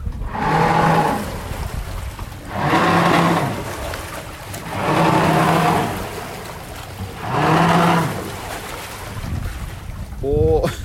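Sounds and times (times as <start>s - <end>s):
boat bow thruster humming whine with rushing water: 0.2s - 8.8s.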